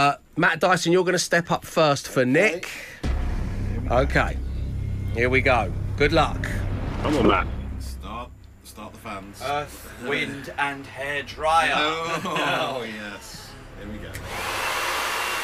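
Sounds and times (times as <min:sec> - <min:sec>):
speech: 0:00.0 - 0:03.0, 0:03.9 - 0:04.4, 0:05.2 - 0:07.6, 0:09.1 - 0:15.0
laughter: 0:11.6 - 0:13.6
hair dryer blowing: 0:14.2 - 0:15.4.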